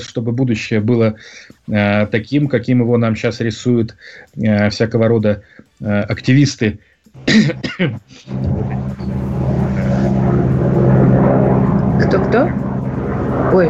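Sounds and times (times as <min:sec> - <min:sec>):
speech: 0:00.0 - 0:09.2, 0:12.1 - 0:12.7, 0:13.4 - 0:13.6
low-flying helicopter rumble: 0:08.2 - 0:13.6.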